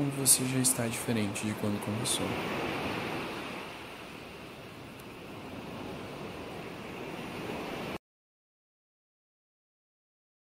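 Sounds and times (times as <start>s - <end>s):
speech: 0.0s - 3.1s
ocean surf washing onto the shore: 0.0s - 8.0s.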